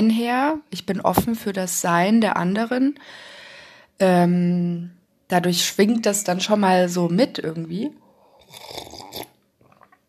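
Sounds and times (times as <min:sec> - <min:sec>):
speech: 0:00.0 - 0:03.4, 0:04.0 - 0:09.3
person slurping tea: 0:08.2 - 0:10.0
soft sip of tea with small bubbling sounds: 0:08.3 - 0:10.0.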